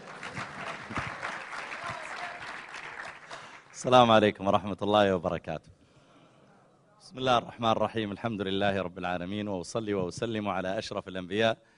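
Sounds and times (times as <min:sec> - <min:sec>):
audience of students applauding: 0:00.0 - 0:03.9
speech: 0:03.8 - 0:05.8, 0:07.1 - 0:11.7.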